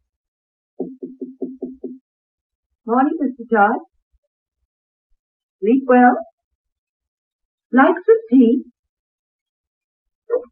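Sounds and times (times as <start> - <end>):
knocking on a wooden door: 0.8 - 2.0
speech: 2.9 - 3.9, 5.6 - 6.3, 7.7 - 8.7, 10.3 - 10.4.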